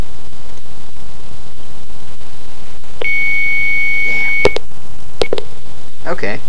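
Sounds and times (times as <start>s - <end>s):
low hum: 0.0s - 6.4s
electronic phone ring tone: 3.0s - 4.6s
speech: 6.1s - 6.4s.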